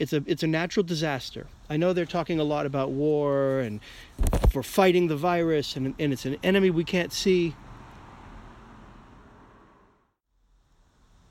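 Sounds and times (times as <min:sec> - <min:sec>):
speech: 0:00.0 - 0:07.6
steady road noise: 0:00.0 - 0:11.2
vehicle passing on a road: 0:06.8 - 0:10.2.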